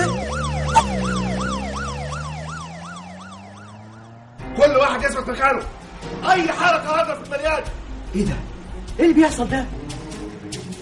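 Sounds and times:
police car siren wailing: 0.0s - 4.4s
speech: 5.0s - 9.9s.

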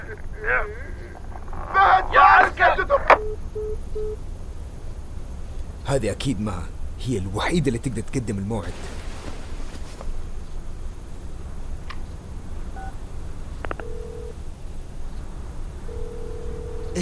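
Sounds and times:
constant low hum: 0.0s - 17.0s
speech: 0.4s - 0.9s, 5.8s - 9.0s
mobile phone ringing with short electronic beeps: 13.7s - 14.4s, 15.9s - 17.0s.

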